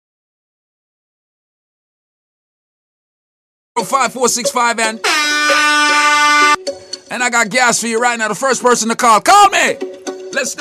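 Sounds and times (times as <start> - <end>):
speech: 3.8 - 6.1, 6.7 - 10.5
loud sustained horn blast: 5.0 - 6.6.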